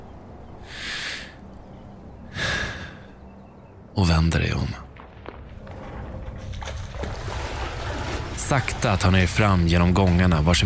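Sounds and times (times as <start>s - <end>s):
deep breaths: 0.6s - 1.4s, 2.3s - 3.2s
speech: 4.0s - 4.9s, 8.5s - 10.6s.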